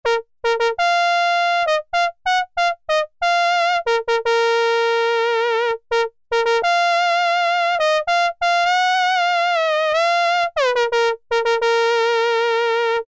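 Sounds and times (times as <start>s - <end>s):
trumpet III preset on Korg M-500 Micro-Preset: 0.0s - 13.0s.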